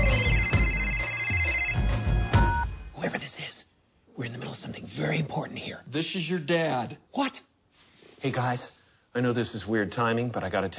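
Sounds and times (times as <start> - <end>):
telephone ringing with an electronic tone: 0.0 - 2.9
speech: 4.5 - 7.5, 8.2 - 10.7.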